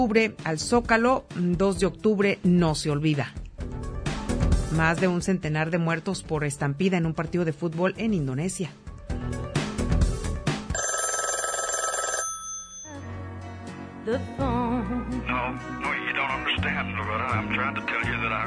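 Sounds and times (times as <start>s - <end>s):
speech: 0.0s - 3.4s, 4.7s - 8.8s, 14.1s - 18.4s
background music: 0.0s - 18.4s
electronic telephone ringing effect: 10.7s - 13.0s.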